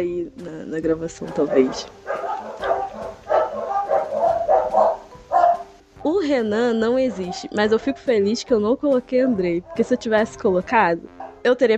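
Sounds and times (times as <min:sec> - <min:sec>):
speech: 0:00.0 - 0:02.0, 0:06.0 - 0:11.7
dogs barking: 0:01.2 - 0:05.8, 0:06.8 - 0:08.4, 0:09.0 - 0:11.6.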